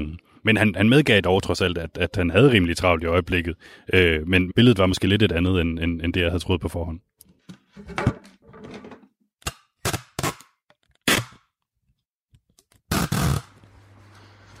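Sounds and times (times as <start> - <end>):
speech: 0.0 - 7.1, 7.8 - 8.1
tape being pulled and torn to fix a recorder onto a broomstick: 9.4 - 11.6, 12.5 - 13.7.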